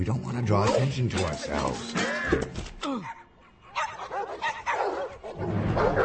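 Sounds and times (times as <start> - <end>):
speech: 0.0 - 3.2
several dogs barking and yipping: 0.5 - 2.0, 3.6 - 6.0.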